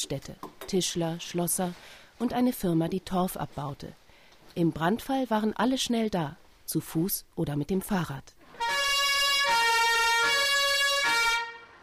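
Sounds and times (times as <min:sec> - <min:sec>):
speech: 0:00.0 - 0:08.4
village fire alarm siren wailing: 0:08.5 - 0:11.8.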